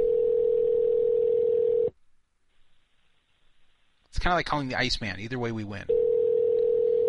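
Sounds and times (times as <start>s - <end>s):
telephone ringback tone heard down the line: 0.0s - 1.9s, 5.9s - 7.0s
speech: 4.2s - 6.0s.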